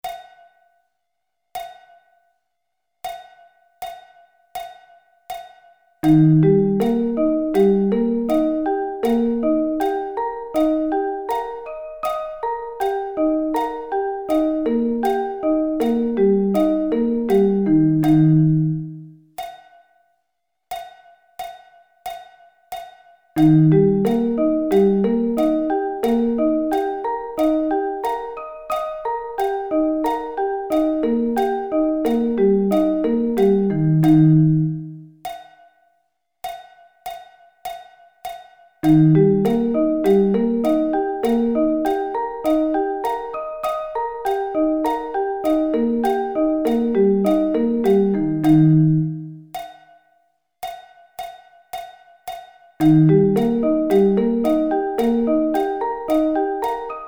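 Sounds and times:
E flat arpeggio inversions: 0:06.0 - 0:19.2, 0:23.4 - 0:35.1, 0:38.8 - 0:49.5, 0:52.8 - 0:57.0.

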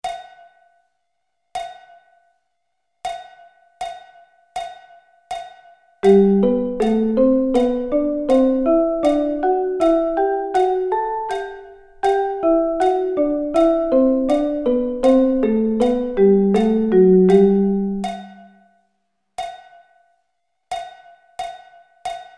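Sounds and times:
musical thirds: 0:06.0 - 0:18.5.

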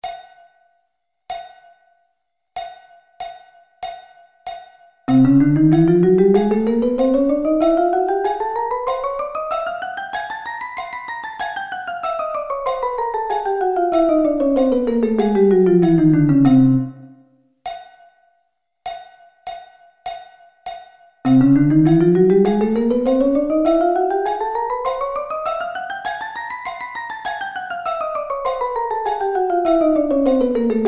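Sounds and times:
chromatic scale: 0:05.1 - 0:17.2, 0:21.3 - 0:30.8.

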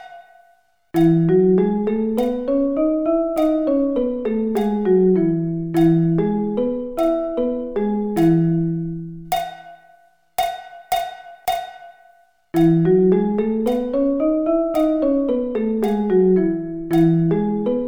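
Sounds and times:
E scale: 0:01.0 - 0:09.3, 0:12.6 - 0:17.8.

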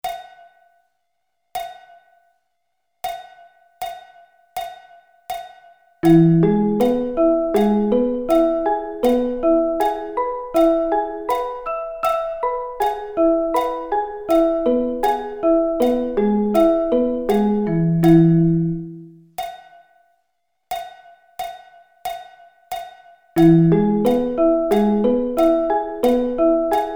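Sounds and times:
E arpeggio inversions: 0:06.0 - 0:19.1, 0:23.4 - 0:26.9.

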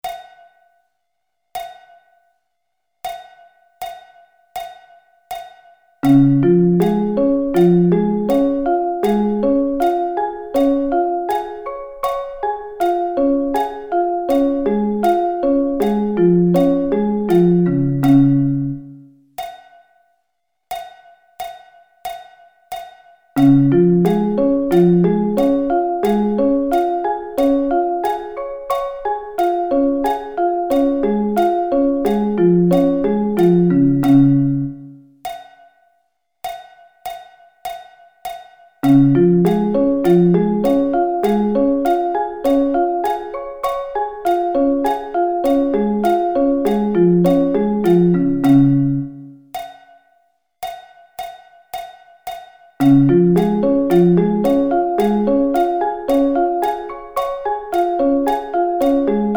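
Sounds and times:
D-flat arpeggio inversions: 0:06.0 - 0:19.1, 0:23.4 - 0:35.0, 0:38.8 - 0:49.4, 0:52.8 - 0:59.3.

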